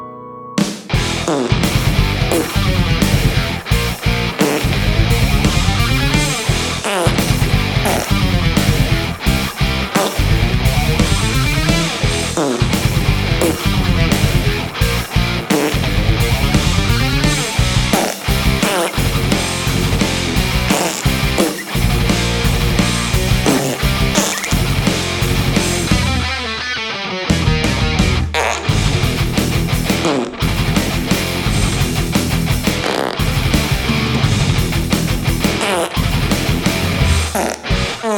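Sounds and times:
metal guitar riff: 0:00.5 - 0:38.1
fart: 0:01.1 - 0:03.5, 0:04.4 - 0:14.5, 0:15.0 - 0:24.7, 0:28.3 - 0:28.9, 0:29.9 - 0:30.5, 0:32.7 - 0:34.3, 0:35.4 - 0:38.1.

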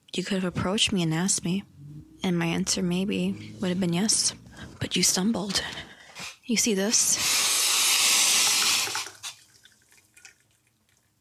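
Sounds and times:
speech: 0:00.2 - 0:05.9, 0:06.5 - 0:07.4
hot water running from a tap: 0:07.1 - 0:10.7
water drips and faint trickles: 0:08.4 - 0:11.1.

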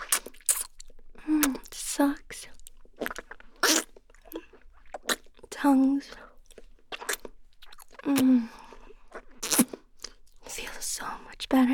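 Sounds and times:
wet mouth smacking and slurping: 0:00.0 - 0:00.8, 0:03.0 - 0:05.3, 0:06.9 - 0:10.2
speech: 0:01.3 - 0:02.5, 0:05.7 - 0:06.2, 0:08.1 - 0:08.6.

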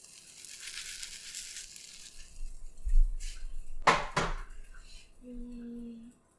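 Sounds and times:
food sizzling in a frying pan: 0:00.0 - 0:03.4.

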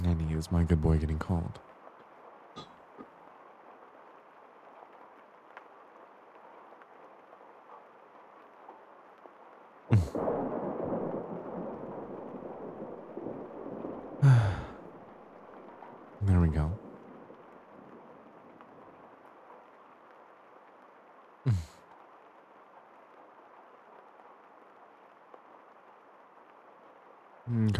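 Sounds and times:
rain hissing outside: 0:00.0 - 0:01.6, 0:09.9 - 0:19.2, 0:21.5 - 0:21.8
speech: 0:00.4 - 0:01.7
thunder crack and rumble: 0:09.9 - 0:19.0.

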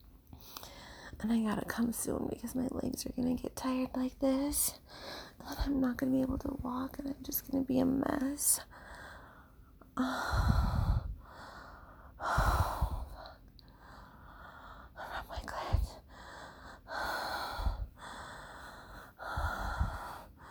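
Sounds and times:
speech: 0:01.2 - 0:08.8, 0:10.0 - 0:10.7
heavy human breathing: 0:08.7 - 0:14.9, 0:16.0 - 0:20.4.

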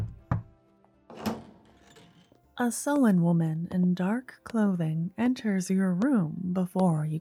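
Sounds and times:
knock at the door of a luxurious palace room: 0:00.0 - 0:00.5
speech: 0:02.6 - 0:07.1.

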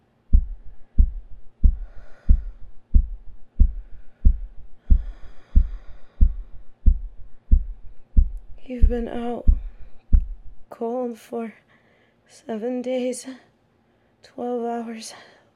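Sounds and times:
heartbeat thumping: 0:00.0 - 0:10.7
soft breathy rustling: 0:00.6 - 0:08.0
speech: 0:08.7 - 0:09.5, 0:10.7 - 0:11.6, 0:12.3 - 0:13.5, 0:14.3 - 0:15.3.

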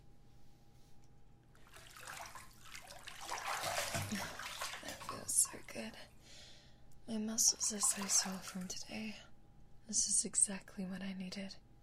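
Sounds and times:
water splashing in a bathtub as a person climbs in: 0:01.5 - 0:06.1, 0:07.4 - 0:09.2
speech: 0:07.1 - 0:09.3, 0:09.9 - 0:11.6.

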